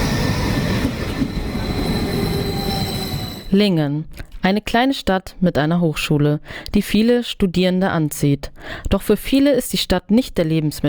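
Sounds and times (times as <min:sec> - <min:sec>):
regional train wheels rumbling on rails arriving at a station: 0:00.0 - 0:03.6
speech: 0:03.5 - 0:10.8.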